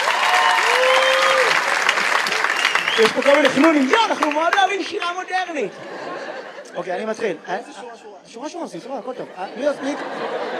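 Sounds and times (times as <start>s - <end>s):
crowd clapping: 0.0s - 5.6s
rising-and-falling whistle or cheer: 0.1s - 1.6s, 2.5s - 3.3s
speech: 3.0s - 10.5s
laughter: 3.2s - 8.2s, 8.9s - 10.5s.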